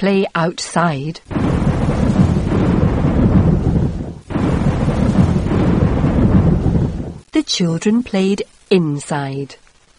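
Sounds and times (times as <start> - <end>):
speech: 0.0 - 1.5, 7.4 - 9.6
heavy continuous rolling thunder from a storm: 1.3 - 7.3.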